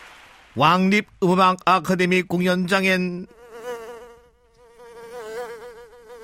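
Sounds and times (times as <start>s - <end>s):
speech: 0.6s - 3.4s
flies buzzing while circling: 3.3s - 6.2s.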